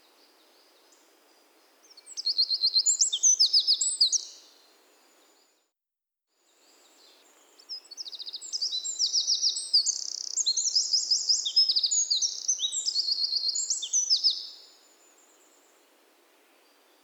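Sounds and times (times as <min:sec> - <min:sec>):
Eurasian wren Troglodytes troglodytes song: 0:01.8 - 0:04.5, 0:07.1 - 0:14.8.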